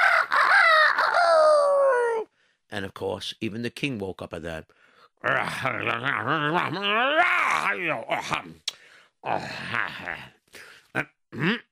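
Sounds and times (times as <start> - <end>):
rooster crowing: 0.0 - 2.2
speech: 2.7 - 8.6, 9.2 - 11.7.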